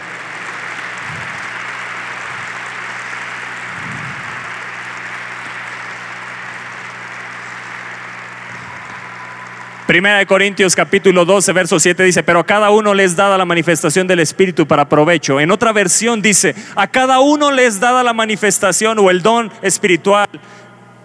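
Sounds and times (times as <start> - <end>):
crowd applauding: 0.0 - 11.1
speech: 9.9 - 20.7.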